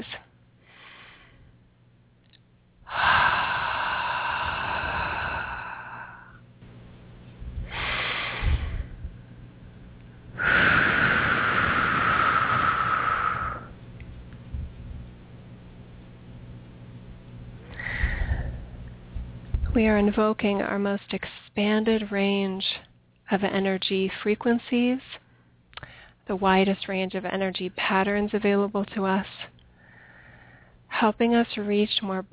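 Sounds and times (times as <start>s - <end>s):
low constant hum: 0.0s - 32.3s
person breathing deeply in through the nose and out through the mouth: 0.6s - 1.5s, 2.9s - 6.4s, 7.6s - 9.0s, 10.4s - 13.8s, 17.7s - 18.8s, 29.7s - 30.8s
speech: 19.8s - 22.7s, 23.3s - 25.1s, 26.3s - 29.4s, 31.0s - 32.3s.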